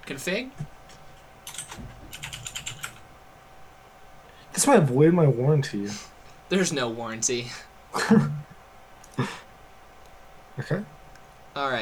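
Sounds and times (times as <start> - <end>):
speech: 0.1 - 0.7, 4.6 - 8.4, 10.6 - 11.0, 11.6 - 11.8
typing on a computer keyboard into a new browser tab: 1.4 - 3.0.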